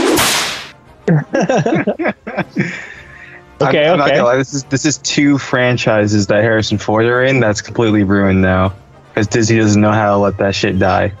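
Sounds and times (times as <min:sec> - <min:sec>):
whip crack sound effect: 0:00.0 - 0:00.8
laughter: 0:01.0 - 0:04.8
speech: 0:01.1 - 0:02.8, 0:03.6 - 0:11.1.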